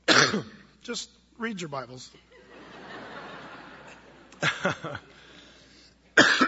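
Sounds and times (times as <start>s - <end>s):
person coughing: 0.0s - 0.6s, 6.2s - 6.4s
faint steady hiss: 0.0s - 6.4s
speech: 0.3s - 2.3s, 4.4s - 5.1s
laughter: 2.1s - 5.5s.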